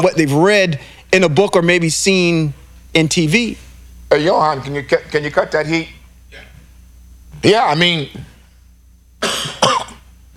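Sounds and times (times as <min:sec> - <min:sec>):
speech: 0:00.0 - 0:06.5, 0:07.4 - 0:08.3
overheated person coughing: 0:06.3 - 0:06.6, 0:09.2 - 0:10.1.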